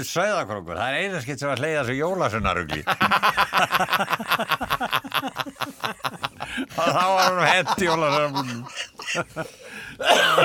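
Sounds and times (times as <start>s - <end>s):
speech: 0.0s - 10.4s
laughter: 2.7s - 10.4s
harsh raspy cough: 7.8s - 10.4s.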